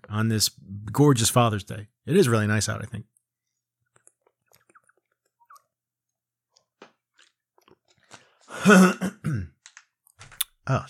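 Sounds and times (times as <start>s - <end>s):
speech: 0.1s - 3.1s, 8.6s - 9.5s, 10.7s - 10.8s
person clearing throat after swallowing wrong: 8.5s - 9.6s
person coughing after swallowing wrong: 8.5s - 9.6s.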